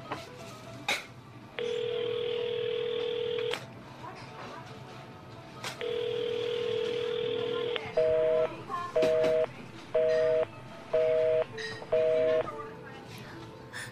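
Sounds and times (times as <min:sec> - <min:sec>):
telephone call tone in long steady buzzes: 0:01.6 - 0:03.6, 0:05.8 - 0:12.5
rapid short telephone busy beeps: 0:07.7 - 0:12.5.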